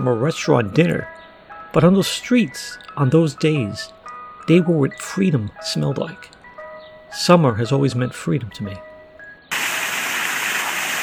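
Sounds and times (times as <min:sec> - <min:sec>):
speech: 0:00.0 - 0:06.4, 0:07.1 - 0:08.9
water gushing from an open fire hydrant: 0:09.5 - 0:11.0.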